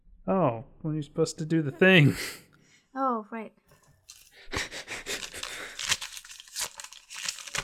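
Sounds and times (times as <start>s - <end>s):
speech: 0.2s - 3.6s
crinkly paper script being handled: 4.0s - 7.6s.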